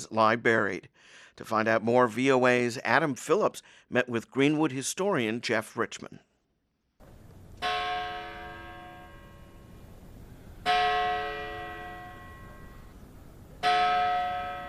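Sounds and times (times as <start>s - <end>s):
speech: 0.0s - 6.3s
large cemetery entrance bell tolling: 7.6s - 9.8s, 10.6s - 13.0s, 13.6s - 14.6s.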